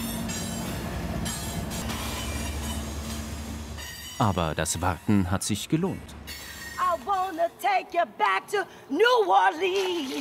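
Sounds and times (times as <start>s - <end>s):
long freight train rumbling past: 0.0s - 4.2s
speech: 4.2s - 6.4s, 7.3s - 10.2s.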